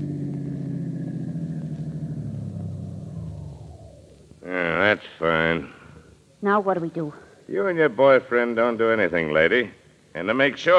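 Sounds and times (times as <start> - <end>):
car engine rumbling at low speed while parking in a garage: 0.0 - 6.2
speech: 4.9 - 5.8, 6.4 - 10.7.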